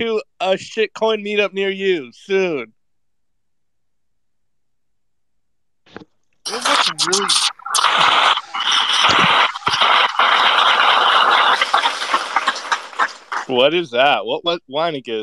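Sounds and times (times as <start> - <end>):
speech: 0.0 - 2.8, 5.9 - 11.7, 13.5 - 15.2
white noise from a soundboard: 6.5 - 13.5.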